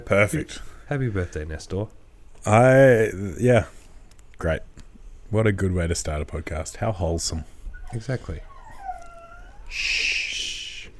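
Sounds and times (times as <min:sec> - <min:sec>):
speech: 0:00.0 - 0:03.8, 0:04.4 - 0:08.5, 0:09.7 - 0:10.3
dog whining behind a closed office door: 0:07.7 - 0:10.9
long breathy shushing hiss: 0:09.7 - 0:10.9.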